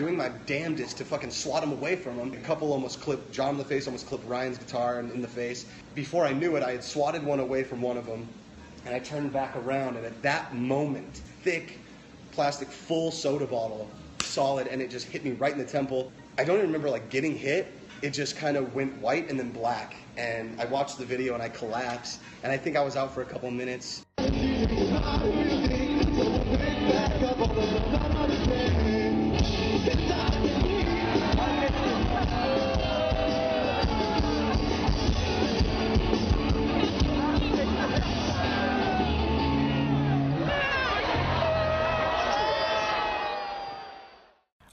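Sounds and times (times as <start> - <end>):
speech: 0.0 - 24.4
large concert crowd booing and shouting: 24.2 - 44.4.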